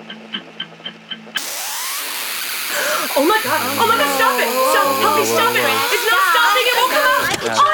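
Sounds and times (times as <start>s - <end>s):
boombox chewing up a cassette tape: 1.4s - 7.6s
speech: 3.2s - 6.6s.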